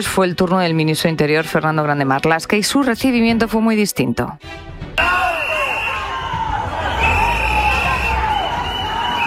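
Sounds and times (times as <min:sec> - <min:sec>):
speech: 0:00.0 - 0:05.2
crowd booing and shouting angrily: 0:05.0 - 0:09.2.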